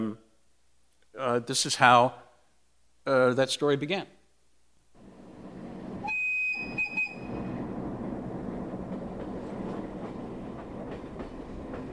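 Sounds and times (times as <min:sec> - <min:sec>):
speech: 0:01.2 - 0:02.2, 0:03.1 - 0:04.2
train travelling from Berlin to Prague rolling along rails: 0:05.0 - 0:11.9
high tonal whistle or squeal: 0:06.0 - 0:07.8.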